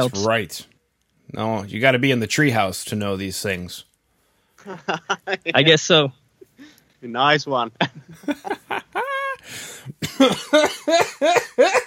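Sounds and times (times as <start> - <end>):
speech: 0.0 - 0.7, 1.3 - 3.9, 4.6 - 6.2, 7.0 - 8.6, 10.2 - 11.8
laughter: 4.6 - 5.6, 7.8 - 9.5
person coughing: 9.8 - 11.8.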